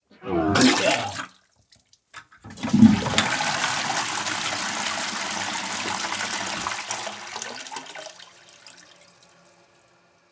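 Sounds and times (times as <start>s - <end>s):
human vomiting: 0.1s - 1.4s
toilet flush: 0.3s - 1.4s, 2.2s - 10.3s.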